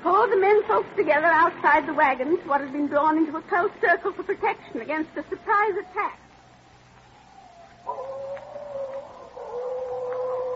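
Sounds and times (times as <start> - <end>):
low steady hum: 0.0 - 10.5
speech: 0.3 - 6.2
coyotes howling at night: 5.2 - 10.5.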